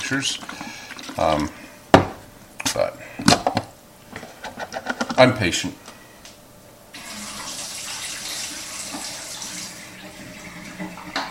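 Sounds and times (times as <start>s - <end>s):
speech: 0.1s - 1.6s, 2.8s - 3.5s, 5.2s - 5.8s
tap water running into a film developing tank: 7.0s - 11.2s.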